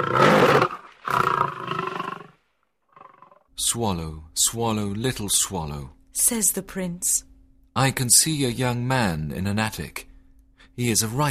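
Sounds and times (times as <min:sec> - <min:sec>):
lion roaring: 0:00.0 - 0:03.5
speech: 0:03.7 - 0:10.1, 0:10.8 - 0:11.2.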